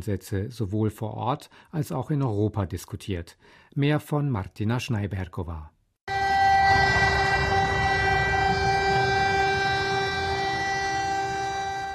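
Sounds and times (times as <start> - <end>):
speech: 0.0 - 5.7
memorial sirens wailing: 6.1 - 11.9.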